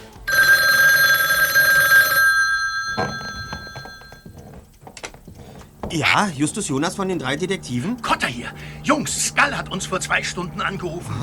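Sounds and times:
old-style telephone bell ringing: 0:00.2 - 0:04.3
speech: 0:03.0 - 0:03.2, 0:05.9 - 0:11.2.

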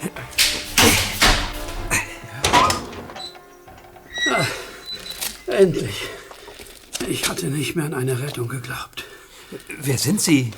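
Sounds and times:
metallic clunks and scrapes of a chamber door bolt sliding back: 0:00.2 - 0:03.3
chamber door creaking open: 0:00.2 - 0:05.5
speech: 0:05.6 - 0:06.2, 0:07.1 - 0:10.5.

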